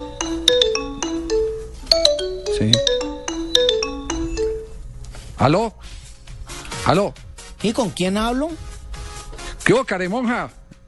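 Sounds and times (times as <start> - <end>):
telephone melodic electronic ringtone: 0.0 - 4.8
speech: 1.9 - 2.9, 5.4 - 5.8, 6.9 - 8.7, 9.6 - 10.6.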